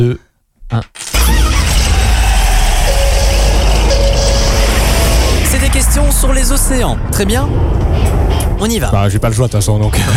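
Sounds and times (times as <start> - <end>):
speech: 0.0 - 1.4, 5.8 - 10.1
engine started with a key running: 1.2 - 9.0.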